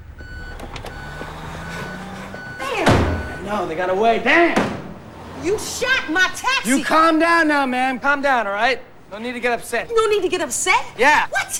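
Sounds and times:
clunks and knocks: 0:00.0 - 0:05.6
reversing lorry engine rumbling and whining: 0:00.0 - 0:11.0
speech: 0:03.5 - 0:04.8, 0:05.4 - 0:11.5.

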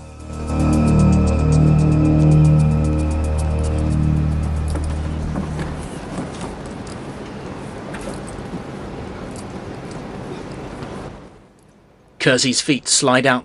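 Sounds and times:
police car engine droning: 0:00.0 - 0:06.6
speech: 0:12.2 - 0:13.4.

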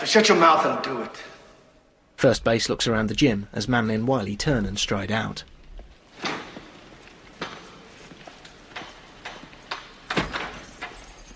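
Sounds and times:
speech: 0:00.0 - 0:01.3, 0:02.2 - 0:05.5
gym door with wire-meshed glass swinging shut: 0:06.1 - 0:07.8, 0:08.7 - 0:11.3
metallic clicks and rattles of a man locking a gym door: 0:08.4 - 0:11.3.

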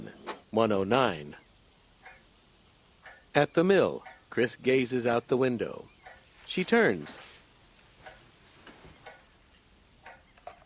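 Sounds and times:
low hiss: 0:00.0 - 0:10.6
speech: 0:00.6 - 0:01.4, 0:03.4 - 0:05.9, 0:06.5 - 0:07.3
wall clock ticking: 0:03.0 - 0:04.3, 0:05.6 - 0:06.9, 0:07.8 - 0:10.5.

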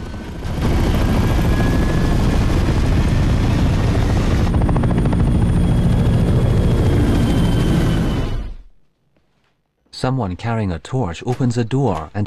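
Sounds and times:
presidential helicopter taking off with rotor roar and turbine whine: 0:00.0 - 0:08.8
speech: 0:10.0 - 0:12.2.

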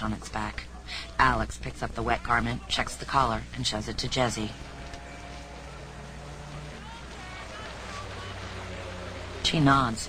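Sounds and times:
speech: 0:00.0 - 0:04.8, 0:09.4 - 0:10.0
police boat engine idling offshore on open water: 0:03.6 - 0:10.0
water wash on open water: 0:04.3 - 0:10.0.

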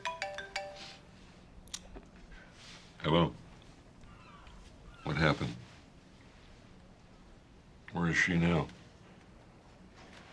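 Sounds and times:
mobile phone melodic ringtone: 0:00.0 - 0:01.1
speech: 0:03.0 - 0:03.4, 0:05.2 - 0:05.6, 0:08.0 - 0:08.8.

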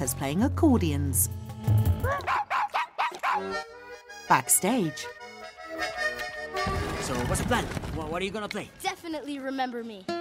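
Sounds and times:
speech: 0:00.0 - 0:02.2, 0:03.4 - 0:03.7, 0:04.3 - 0:05.2, 0:06.6 - 0:10.1
chorus of dogs barking as a musical act in a talent competition: 0:02.2 - 0:03.5.

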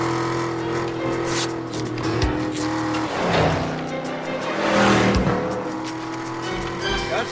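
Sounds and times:
car engine revving in a chase: 0:00.0 - 0:07.3
car tires squealing in a chase: 0:00.0 - 0:07.3.

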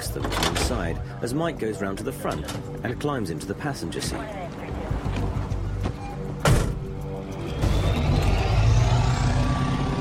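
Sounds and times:
speech: 0:00.2 - 0:04.4
heavy truck idling and pulling away: 0:05.7 - 0:09.9.

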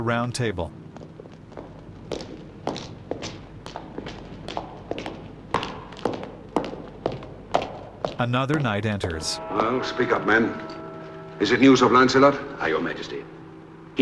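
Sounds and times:
speech: 0:00.0 - 0:00.8, 0:08.2 - 0:10.8, 0:11.4 - 0:13.4
footsteps of a man pacing in a great hall: 0:00.7 - 0:09.4.

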